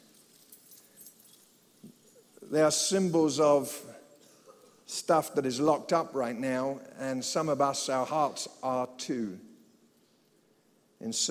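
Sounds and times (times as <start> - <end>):
many keys shaken together during a prayer: 0.0 - 2.5
speech: 2.5 - 3.9, 5.0 - 9.5, 11.0 - 11.3.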